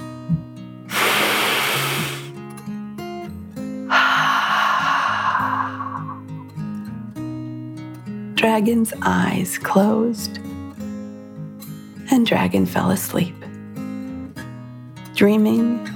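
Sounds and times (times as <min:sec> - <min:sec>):
slow deep breath in and out: 0:00.9 - 0:02.3, 0:03.9 - 0:06.5
speech: 0:08.4 - 0:10.5, 0:12.2 - 0:13.4, 0:15.2 - 0:15.9.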